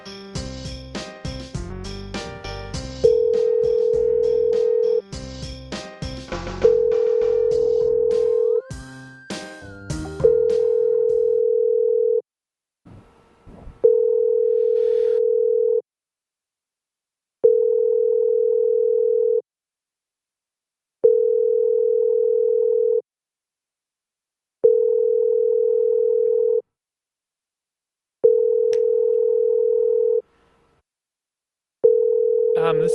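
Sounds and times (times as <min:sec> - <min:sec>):
ringback tone on an outgoing telephone call: 0:03.0 - 0:05.0, 0:06.6 - 0:08.7, 0:10.2 - 0:12.2, 0:13.8 - 0:15.8, 0:17.4 - 0:19.4, 0:21.0 - 0:23.0, 0:24.6 - 0:26.6, 0:28.2 - 0:30.2, 0:31.8 - 0:32.9.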